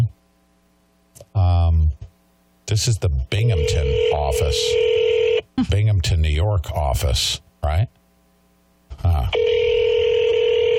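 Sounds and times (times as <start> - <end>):
speech: 2.7 - 8.0
steady telephone line tone: 3.5 - 5.4, 9.3 - 10.7.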